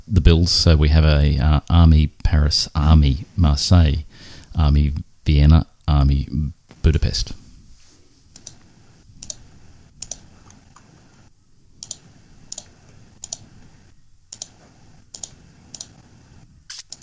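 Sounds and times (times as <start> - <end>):
speech: 0.2 - 7.4
heavy-duty mouse clicking: 8.3 - 10.9, 11.8 - 16.0, 16.7 - 17.0.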